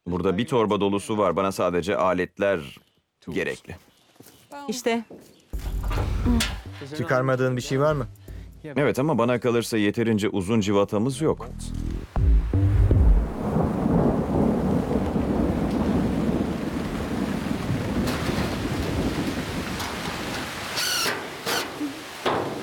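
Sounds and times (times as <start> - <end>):
speech: 0.1 - 3.9, 4.7 - 5.2, 6.2 - 11.9
low wind noise: 11.9 - 21.0
steady heavy rain pouring: 11.9 - 22.6
deep rumble of thunder in an approaching rainstorm: 12.2 - 20.7.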